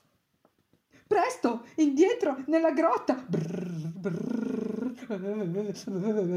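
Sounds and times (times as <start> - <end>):
speech: 1.2 - 6.3
human voice imitating bear growls and roars: 3.2 - 6.3.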